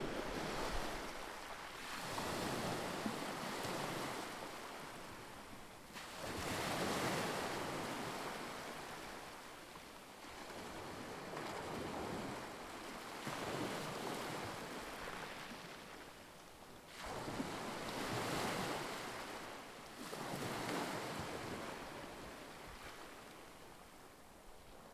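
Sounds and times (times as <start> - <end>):
waves: 0.0 - 24.9.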